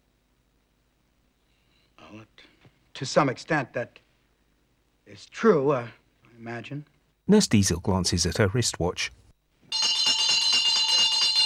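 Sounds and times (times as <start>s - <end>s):
speech: 2.1s - 4.0s, 5.1s - 9.2s
crystal bell ringing at a dinner table: 9.7s - 11.4s.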